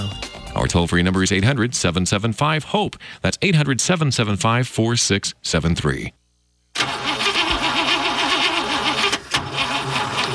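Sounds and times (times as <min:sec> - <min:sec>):
speech: 0:00.7 - 0:06.2
car engine cranking without starting: 0:06.8 - 0:10.3.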